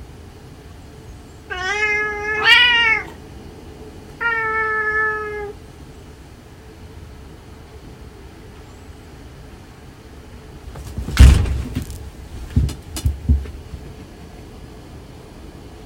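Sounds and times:
tabby cat whining meows: 0:01.5 - 0:03.2, 0:04.2 - 0:05.6
thumps and scuffling of cats squabbling: 0:10.7 - 0:14.2.

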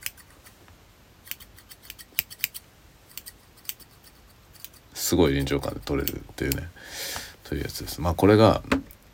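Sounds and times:
scissors snipping: 0:01.2 - 0:04.8, 0:05.9 - 0:06.6
speech: 0:05.1 - 0:09.0.

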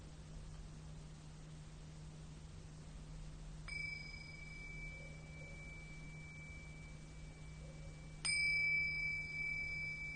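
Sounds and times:
Tibetan singing bowl: 0:03.6 - 0:10.1.

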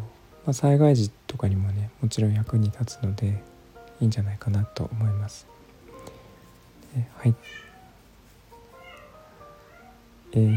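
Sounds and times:
speech: 0:00.5 - 0:05.6, 0:06.9 - 0:07.7, 0:10.3 - 0:10.5
cat meowing: 0:07.3 - 0:08.0, 0:08.7 - 0:10.5.

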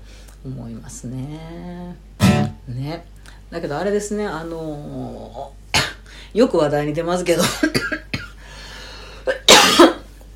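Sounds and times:
speech: 0:00.4 - 0:05.6, 0:06.3 - 0:08.0
person coughing: 0:05.8 - 0:06.0, 0:07.4 - 0:08.4, 0:09.3 - 0:10.1.

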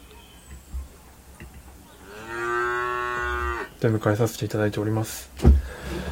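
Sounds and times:
cow mooing: 0:02.0 - 0:03.7
speech: 0:03.8 - 0:06.1.

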